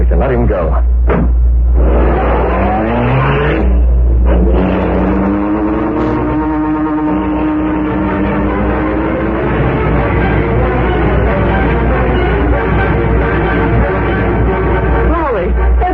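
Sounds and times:
speech: 0.1 - 1.5
car engine revving and pulling away: 1.0 - 15.9.

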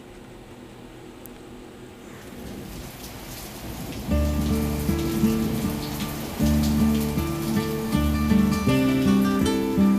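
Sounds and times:
real rain falling outside: 2.0 - 9.9
sustained musical chords: 4.1 - 9.9.

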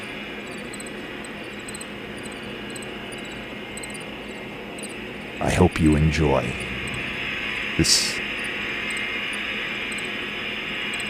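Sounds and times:
crickets chirping: 0.0 - 11.0
speech: 5.4 - 6.7, 7.8 - 8.2
electronic music: 5.4 - 8.6.

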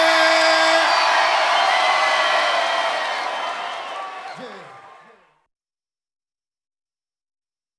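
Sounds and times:
crowd cheering and whooping in a venue: 0.2 - 5.2.

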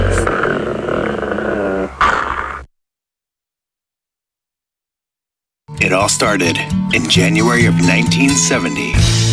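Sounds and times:
puppies growling: 0.0 - 2.7
speech: 6.0 - 9.2.

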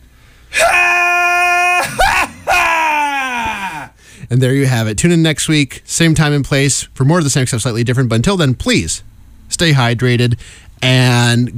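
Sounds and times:
man screaming: 0.5 - 4.0
speech: 4.3 - 11.5.

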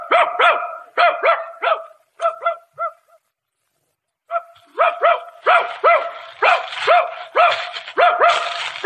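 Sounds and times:
dog barking excitedly as it sets out to hunt rabbits: 0.0 - 3.2, 4.3 - 8.8.

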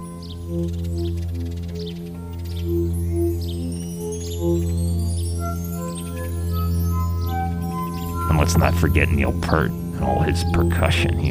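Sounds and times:
bird-like chirps: 0.0 - 9.0
guitar notes swelling with a volume pedal: 0.0 - 11.2
low steady drone: 0.0 - 11.2
speech: 0.5 - 1.9, 8.5 - 11.2.

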